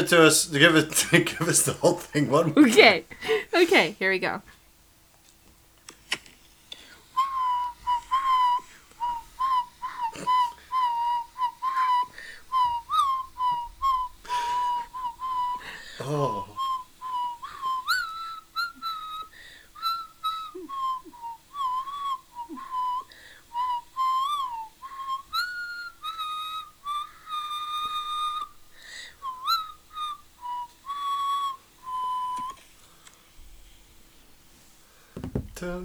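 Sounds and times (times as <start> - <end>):
laughter: 0.0 - 4.4, 7.4 - 12.8, 14.2 - 16.6
speech: 0.0 - 4.6, 16.1 - 16.5
person whistling a melodic tune: 6.8 - 32.6.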